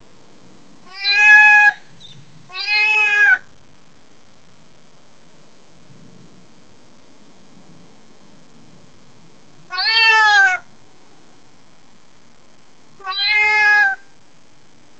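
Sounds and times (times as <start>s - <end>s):
domestic cat meowing: 0.8s - 1.8s, 2.5s - 3.4s, 9.7s - 10.7s, 13.0s - 14.1s
angry hawk cry: 0.9s - 3.5s, 9.7s - 10.7s, 13.0s - 14.1s.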